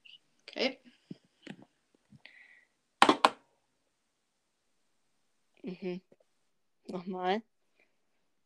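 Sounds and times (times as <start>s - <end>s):
speech: 0.6s - 0.9s, 5.8s - 6.2s, 6.9s - 7.5s
small polished volcanic stone tapped lightly on desk: 3.0s - 3.4s.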